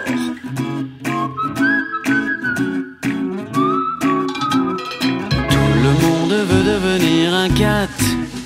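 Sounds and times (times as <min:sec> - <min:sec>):
bright whistled melody: 0:00.0 - 0:06.5
short upbeat musical interlude with rhythmic beat: 0:00.0 - 0:08.4
speech: 0:00.1 - 0:00.7.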